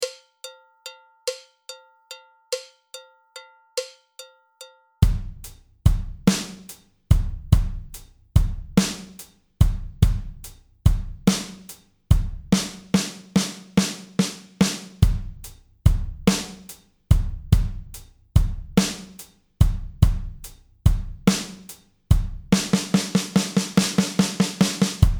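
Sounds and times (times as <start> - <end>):
groove at 72 bpm: 5.0 - 25.1.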